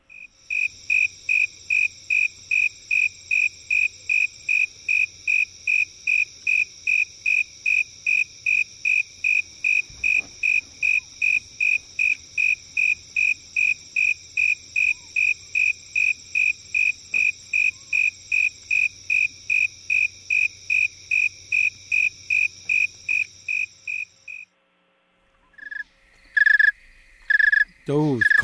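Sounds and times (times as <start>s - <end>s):
snowy tree cricket chirping: 0.0s - 24.5s, 25.4s - 28.4s
speech: 27.9s - 28.4s.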